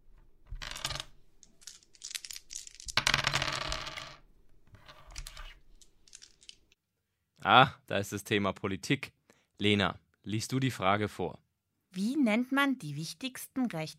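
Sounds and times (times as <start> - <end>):
dice rattling and clattering across a hard board in a board game: 0.5 - 4.2, 4.8 - 6.7
speech: 7.4 - 13.9.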